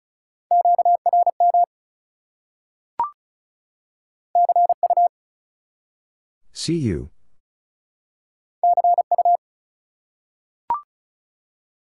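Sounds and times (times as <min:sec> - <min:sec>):
Morse code beeps at 35 words per minute in mid-pitched tone: 0:00.5 - 0:01.7, 0:04.4 - 0:05.1, 0:08.6 - 0:09.4
speech: 0:06.6 - 0:07.2.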